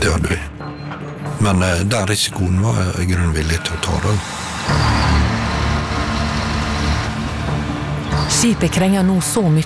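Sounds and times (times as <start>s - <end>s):
speech: 1.4s - 5.0s, 8.3s - 9.6s
fire department ladder truck diesel engine idling: 3.8s - 9.0s.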